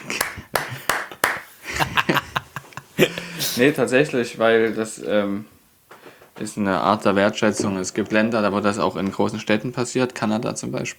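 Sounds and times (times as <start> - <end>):
separate hand claps: 0.0 - 3.4
laughter: 0.0 - 3.8
murmuring voices: 1.6 - 3.8
speech: 3.0 - 5.6, 6.4 - 10.9.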